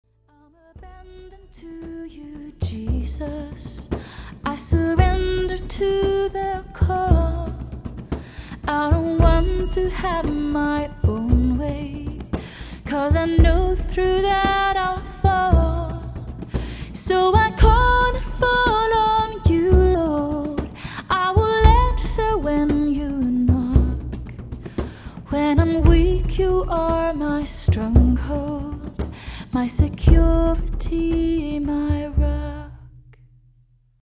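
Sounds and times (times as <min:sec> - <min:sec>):
percussion: 0:00.8 - 0:33.7.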